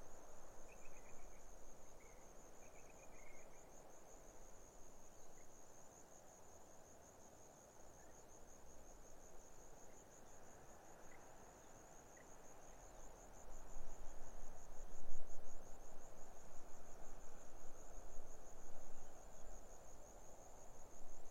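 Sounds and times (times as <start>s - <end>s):
grasshoppers buzzing in arid hills of the Barrier Ranges, Australian outback: 0.0s - 21.2s
wind through desert she-oaks in the Australian outback: 0.0s - 21.2s.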